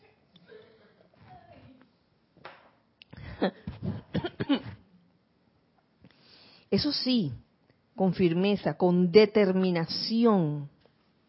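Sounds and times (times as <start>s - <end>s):
person coughing harshly: 3.2s - 4.8s
speech: 3.4s - 3.7s, 6.7s - 10.7s.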